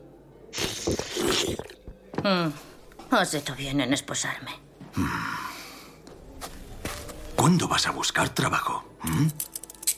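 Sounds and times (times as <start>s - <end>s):
wet slurp of a strand of spaghetti: 0.6s - 1.8s
speech: 2.2s - 5.3s, 7.5s - 9.5s.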